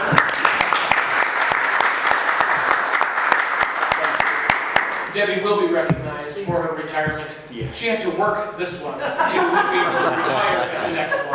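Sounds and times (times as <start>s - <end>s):
group applauding: 0.0s - 5.2s
speech: 5.2s - 11.3s
laughter: 8.6s - 11.3s.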